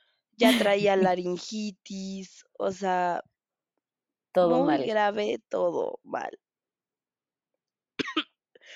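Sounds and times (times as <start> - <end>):
laughter: 0.4 - 1.1
speech: 0.4 - 3.3, 4.4 - 6.4
person coughing: 8.0 - 8.2.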